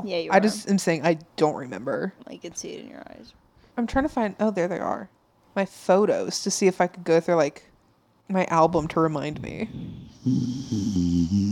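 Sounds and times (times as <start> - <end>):
speech: 0.0 - 7.7, 8.3 - 11.5
person making a throaty snoring-like snort: 9.5 - 11.5.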